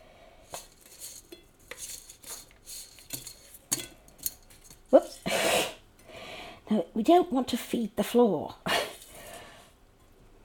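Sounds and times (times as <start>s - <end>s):
faint steady hiss of potatoes cooking: 0.0s - 10.4s
utensils clinking and scraping in a pan of crispy potatoes: 0.5s - 5.4s
speech: 6.7s - 8.7s.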